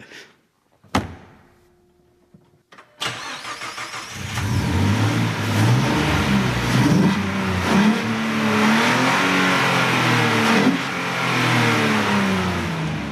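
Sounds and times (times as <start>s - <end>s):
classic British collector's car engine revving: 3.0s - 13.0s.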